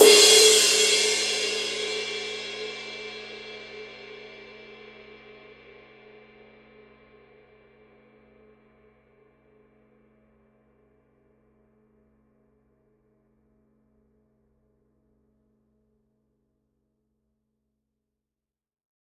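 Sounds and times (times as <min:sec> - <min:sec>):
crisp ride cymbal: 0:00.0 - 0:03.2.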